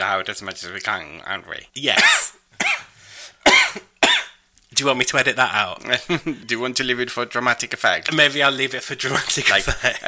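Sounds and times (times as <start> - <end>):
speech: 0.0 - 2.2, 4.8 - 10.0
sharp harsh coughs: 1.9 - 4.4.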